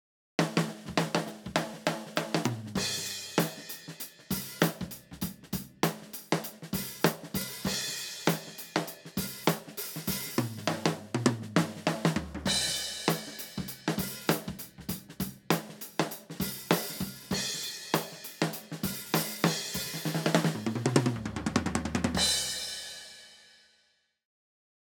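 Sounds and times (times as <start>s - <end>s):
drums recorded from top microphone: 0.4s - 23.8s.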